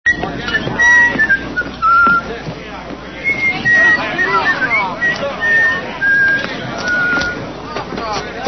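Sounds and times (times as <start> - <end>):
gazebo whistle: 0.1 - 2.3, 3.2 - 7.4.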